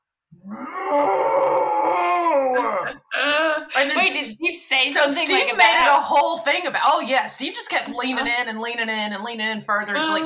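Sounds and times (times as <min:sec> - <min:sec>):
speech: 0:00.4 - 0:02.0, 0:04.0 - 0:10.2
person imitating a dog howling: 0:00.4 - 0:03.8.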